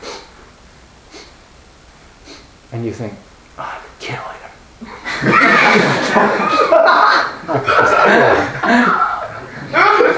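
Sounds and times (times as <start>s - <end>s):
voice imitating sniffling: 0.0s - 0.4s, 1.1s - 1.4s, 2.2s - 2.5s
speech: 2.7s - 9.0s
laughter: 4.8s - 10.1s.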